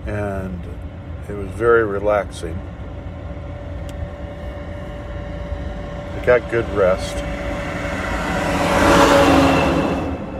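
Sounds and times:
speech: 0:00.0 - 0:02.8, 0:06.2 - 0:07.5
car passing by on a quiet residential street: 0:06.2 - 0:10.3.

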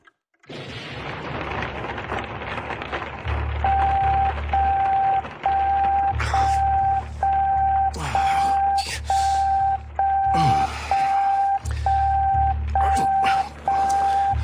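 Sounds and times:
steady dense rain: 0:00.5 - 0:14.4
deep rumbling drone: 0:00.6 - 0:14.4
repeating electronic beeping tone: 0:03.6 - 0:14.4.

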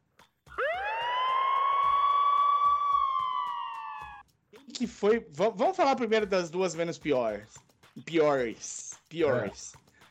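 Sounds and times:
ambulance siren wailing: 0:00.5 - 0:04.2
speech: 0:04.8 - 0:09.8.

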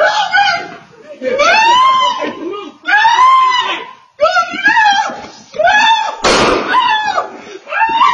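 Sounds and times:
laughter: 0:01.0 - 0:02.9
dog walker screaming and shrieking while grabbing at dogs: 0:01.4 - 0:08.1
sharp thud: 0:06.2 - 0:06.8.

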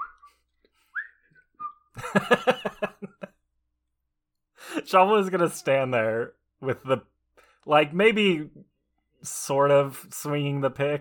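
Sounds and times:
man with a shovel whistling a military march tune: 0:00.0 - 0:01.9
man laughing: 0:02.0 - 0:03.4
speech: 0:02.1 - 0:02.8, 0:04.9 - 0:10.9.

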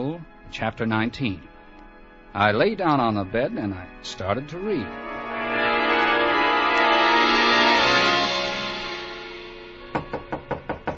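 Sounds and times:
speech: 0:00.0 - 0:01.5, 0:02.3 - 0:05.0
sustained droning tone: 0:03.1 - 0:10.4
bellhop knocking on a hotel room door: 0:09.9 - 0:10.9.

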